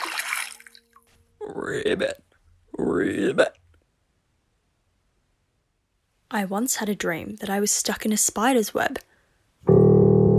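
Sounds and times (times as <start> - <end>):
splash into a pond: 0.0 - 0.8
water dripping and trickling: 0.0 - 1.2
speech: 1.5 - 3.6, 6.3 - 9.1.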